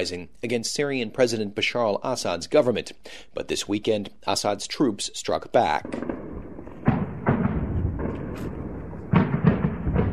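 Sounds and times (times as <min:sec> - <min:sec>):
speech: 0:00.0 - 0:06.2
loud explosions: 0:05.7 - 0:10.1
machine gun fire: 0:05.8 - 0:10.1.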